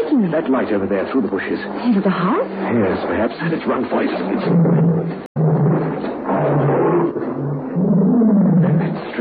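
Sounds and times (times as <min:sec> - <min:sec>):
speech: 0:00.2 - 0:05.2
pet tiger roaring: 0:04.2 - 0:09.1.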